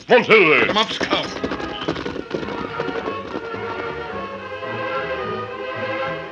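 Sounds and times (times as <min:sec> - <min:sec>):
horses galloping: 0:00.0 - 0:06.0
speech: 0:00.1 - 0:01.5
sustained dramatic music: 0:01.4 - 0:06.2.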